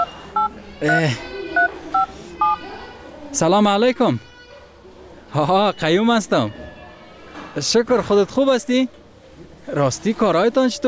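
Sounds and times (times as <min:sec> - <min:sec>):
telephone keypad tones as a phone number is dialled: 0:00.0 - 0:01.0
speech: 0:00.8 - 0:01.3, 0:03.4 - 0:04.3, 0:05.3 - 0:06.6, 0:07.6 - 0:09.0, 0:09.7 - 0:10.8.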